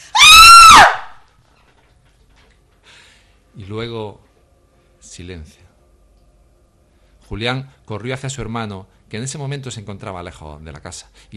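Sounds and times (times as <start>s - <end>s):
woman screaming, loud and high-pitched: 0.1s - 1.2s
speech: 3.6s - 4.3s, 5.2s - 5.7s, 7.3s - 11.3s.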